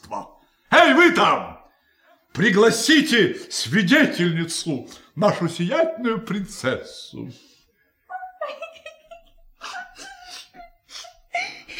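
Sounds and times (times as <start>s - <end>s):
speech: 1.2s - 1.6s, 2.4s - 7.5s
laughter: 8.3s - 11.7s
person crying and whimpering as a princess: 9.6s - 11.7s.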